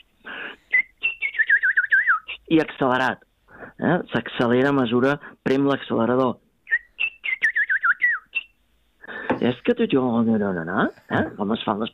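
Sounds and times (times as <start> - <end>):
black woodpecker calling: 0.0 - 2.4, 6.6 - 9.8
speech: 2.5 - 6.4, 9.4 - 11.9.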